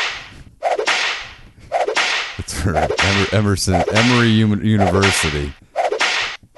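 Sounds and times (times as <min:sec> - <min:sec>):
whip cracks sound effect: 0:00.0 - 0:04.2, 0:04.8 - 0:06.4
speech: 0:02.6 - 0:05.6.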